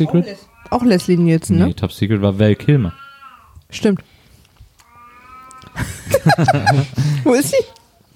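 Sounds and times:
speech: 0:00.0 - 0:03.0, 0:03.7 - 0:04.1, 0:05.8 - 0:07.8
pet cat yowling at a mirror: 0:00.4 - 0:01.4, 0:02.6 - 0:03.6, 0:04.8 - 0:05.8
laughter: 0:05.7 - 0:07.4.

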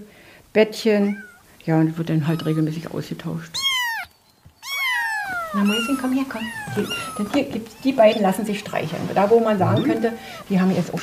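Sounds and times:
speech: 0:00.0 - 0:03.7, 0:05.5 - 0:11.0
cat meowing: 0:01.0 - 0:01.5, 0:02.2 - 0:02.9, 0:03.5 - 0:10.6.

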